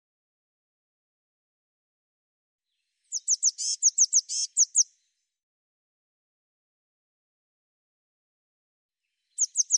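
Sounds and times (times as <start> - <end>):
Eurasian blue tit calling: 3.1 - 4.9, 9.4 - 9.7.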